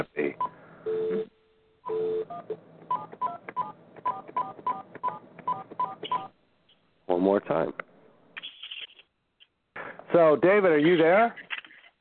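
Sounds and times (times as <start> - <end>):
speech: 0.0 - 0.4, 7.2 - 7.8, 10.2 - 11.4
telephone keypad dialing tones: 1.9 - 6.3.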